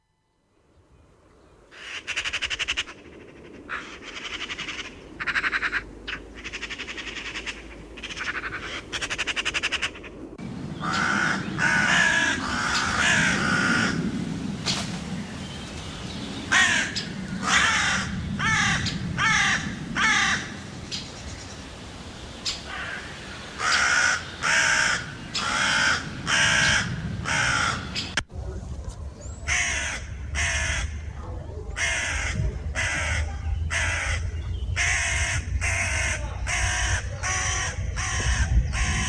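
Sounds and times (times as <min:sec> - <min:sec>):
low outdoor rumble: 0:00.5 - 0:39.0
crow cawing in harsh raspy bursts: 0:01.7 - 0:10.2, 0:10.8 - 0:14.1, 0:16.5 - 0:20.6, 0:22.5 - 0:28.1, 0:29.5 - 0:31.1, 0:31.8 - 0:39.0.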